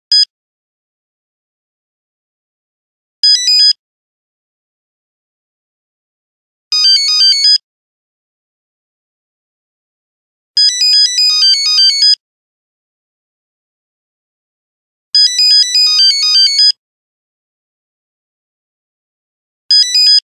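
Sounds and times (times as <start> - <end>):
Nokia 5110 phone buzzer ringtone: 6.8 - 7.6, 10.6 - 12.2, 15.2 - 16.8, 19.7 - 20.3.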